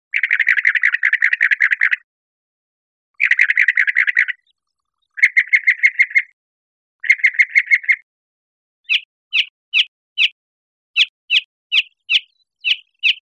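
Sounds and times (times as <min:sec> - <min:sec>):
northern mockingbird singing: 0:00.1 - 0:02.1, 0:03.2 - 0:06.4, 0:07.0 - 0:08.1, 0:08.8 - 0:10.4, 0:11.0 - 0:13.3.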